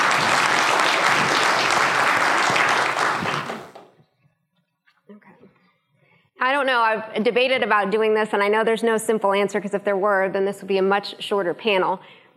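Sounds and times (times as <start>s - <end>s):
crowd applause for panelists of a panel discussion: 0.0s - 3.9s
speech: 6.6s - 12.3s.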